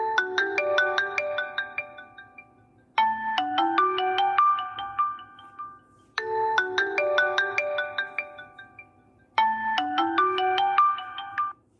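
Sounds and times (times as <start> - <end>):
original phone ringtone: 0.0 - 11.7.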